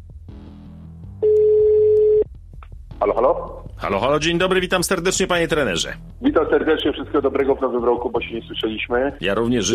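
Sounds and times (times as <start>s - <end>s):
telephone ringback tones from an outgoing call to a kickboxing coach: 1.3s - 2.3s
speech: 3.1s - 9.7s.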